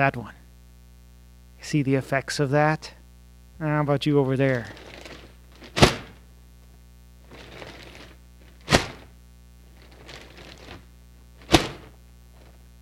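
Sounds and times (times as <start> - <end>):
speech: 0.0 - 0.4, 1.6 - 3.0, 3.6 - 5.0
air vortex cannon firing thumps: 4.7 - 6.2, 7.3 - 9.1, 11.4 - 12.5.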